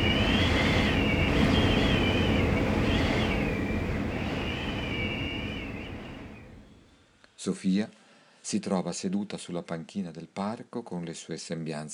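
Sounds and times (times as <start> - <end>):
loud wind roaring with a whistling howl: 0.0 - 6.8
speech: 7.4 - 11.9.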